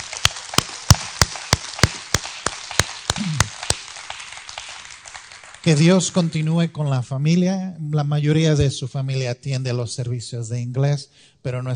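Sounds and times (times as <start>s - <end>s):
group clapping in rhythm to honor a 95-year-old sister: 0.0s - 6.7s
speech: 5.6s - 11.7s.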